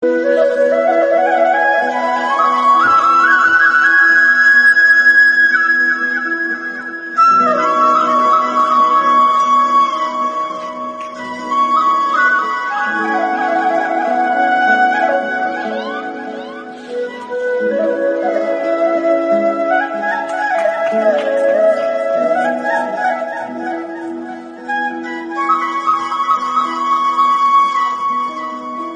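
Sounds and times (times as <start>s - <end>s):
Pahari bansuri ringtone: 0.0s - 28.9s.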